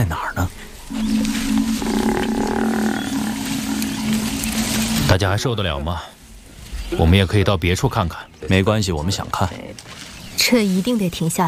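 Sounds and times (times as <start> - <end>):
African buffalo bellowing in distress: 0.9 - 4.8
speech: 5.2 - 6.2, 6.9 - 11.4.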